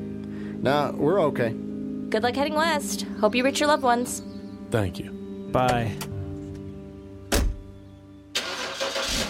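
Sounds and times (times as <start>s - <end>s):
speech: 0.6s - 6.1s
car engine starting: 8.4s - 9.2s.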